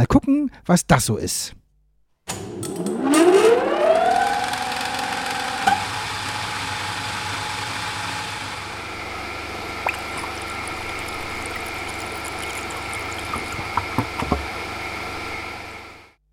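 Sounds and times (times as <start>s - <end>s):
speech: 0.0s - 1.6s
electric water pump for diesel engine cooling: 2.4s - 16.0s.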